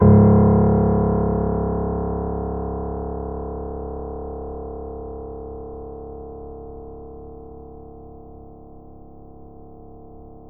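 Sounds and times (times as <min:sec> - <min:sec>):
grand piano C sharp 0 note played mezzo forte: 0:00.0 - 0:04.1.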